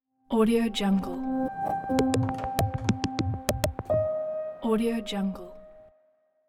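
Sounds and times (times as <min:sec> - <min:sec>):
clean piano logo jingle: 0:01.2 - 0:05.1.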